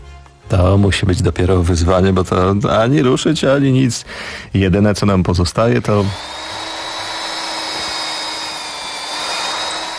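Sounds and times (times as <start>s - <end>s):
speech: 0.5s - 6.4s
chainsaw carving an ice sculpture: 6.1s - 9.9s.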